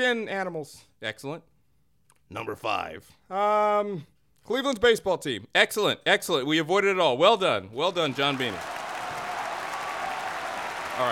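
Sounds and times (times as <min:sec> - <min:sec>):
speech: 0:00.0 - 0:01.5, 0:02.3 - 0:08.8
group applauding: 0:07.9 - 0:11.1.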